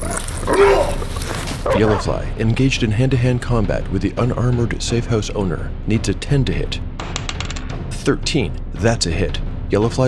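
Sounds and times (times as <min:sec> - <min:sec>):
dog growling: 0:00.0 - 0:02.2
speech: 0:01.8 - 0:06.9, 0:08.0 - 0:10.0.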